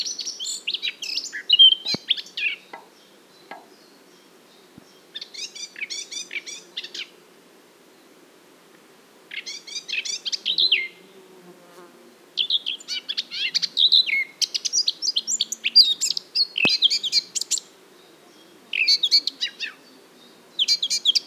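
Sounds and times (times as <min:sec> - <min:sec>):
Eurasian blackcap song, Sylvia atricapilla: 0:00.0 - 0:07.1, 0:12.4 - 0:21.2.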